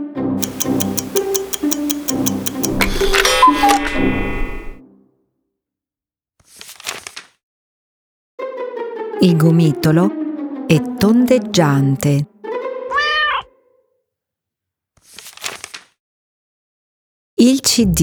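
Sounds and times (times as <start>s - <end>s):
clock ticking: 0.4s - 4.8s
sustained tone: 0.6s - 4.8s
speech: 9.2s - 12.3s, 17.4s - 18.0s.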